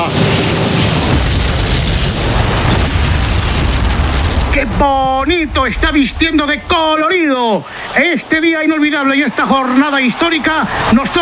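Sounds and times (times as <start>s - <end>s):
Valencian pyrotechnics fireworks booming and crackling: 0.0s - 8.0s
speech: 4.6s - 11.2s.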